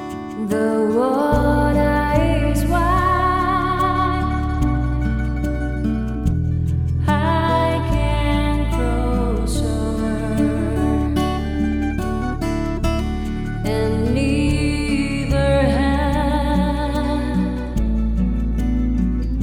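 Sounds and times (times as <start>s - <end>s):
person singing vocals only in a hall: 0.3s - 6.3s, 7.0s - 19.4s.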